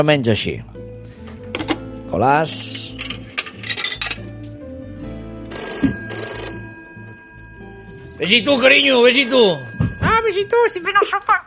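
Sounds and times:
speech: 0.0s - 0.9s, 2.1s - 2.9s, 8.2s - 11.4s
telephone ringing during a call from a phone booth: 5.5s - 11.4s.

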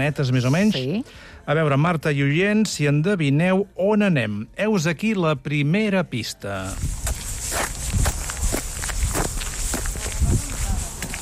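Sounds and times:
speech: 0.0s - 7.0s
soft gritty hiss: 0.0s - 11.2s
light footsteps crunching across sandy ground on a flat path: 6.6s - 11.2s.

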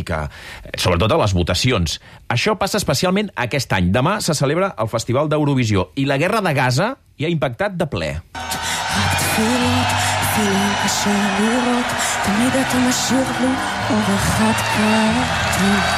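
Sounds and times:
speech: 0.0s - 15.9s
large concert audience booing and chanting protest chants: 8.4s - 15.9s
people shouting: 8.4s - 15.9s.

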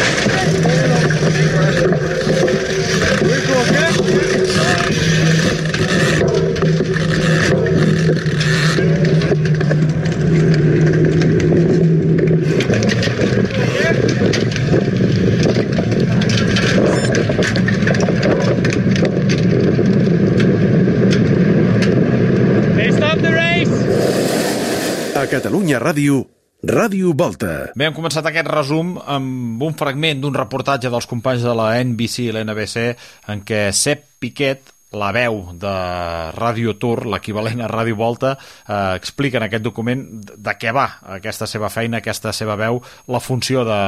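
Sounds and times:
race motorcycle engine droning during a race: 0.0s - 24.0s
roar of noise: 0.0s - 25.7s
speech: 25.7s - 43.8s.

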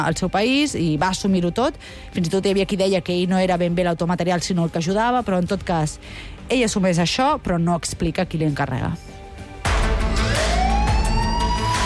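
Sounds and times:
speech: 0.0s - 9.2s
emergency siren wailing: 10.0s - 11.8s.

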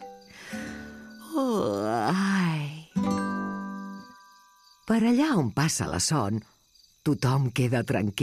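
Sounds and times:
long drawn-out voiced yawn: 0.4s - 2.9s
speech: 4.9s - 8.2s.

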